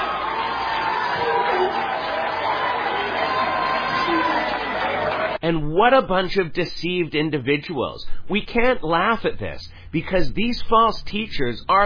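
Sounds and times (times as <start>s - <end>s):
large crowd roaring and cheering: 0.0s - 5.4s
speech: 5.5s - 11.8s.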